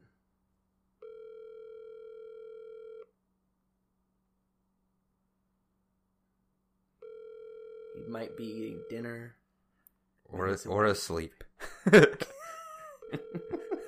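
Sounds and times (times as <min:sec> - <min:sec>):
telephone ringback tone on a live phone call: 0:01.0 - 0:03.1, 0:07.0 - 0:09.1, 0:13.0 - 0:13.8
speech: 0:08.0 - 0:09.4, 0:10.3 - 0:12.3
laughter: 0:11.6 - 0:13.8.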